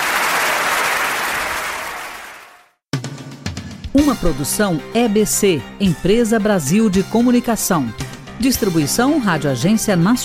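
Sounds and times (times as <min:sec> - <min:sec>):
large audience applauding: 0:00.0 - 0:02.8
speech: 0:04.0 - 0:10.2.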